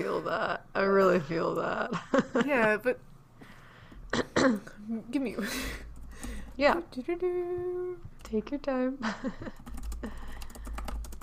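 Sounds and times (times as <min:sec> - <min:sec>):
low steady hum: 0:00.0 - 0:11.2
speech: 0:00.1 - 0:03.1, 0:04.1 - 0:05.8, 0:06.6 - 0:10.3
typing on a computer keyboard: 0:05.9 - 0:06.6, 0:09.5 - 0:11.2.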